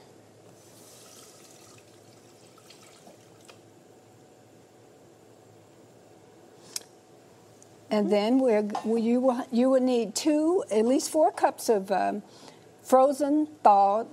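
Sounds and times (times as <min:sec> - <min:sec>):
water pouring from a tap into a pot for cooking black-eyed peas: 0:00.6 - 0:03.6
speech: 0:07.9 - 0:14.1.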